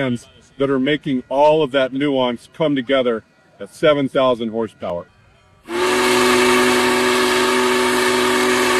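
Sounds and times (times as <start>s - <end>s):
speech: 0.0s - 5.8s
Big Boy steam locomotive whistle blowing, pulled by hand by the crew: 5.6s - 8.7s.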